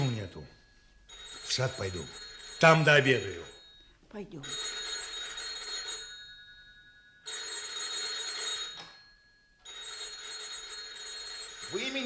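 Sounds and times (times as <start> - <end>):
telephone bell ringing: 0.0 - 12.0
speech: 0.3 - 0.6, 1.5 - 4.7, 11.7 - 12.0.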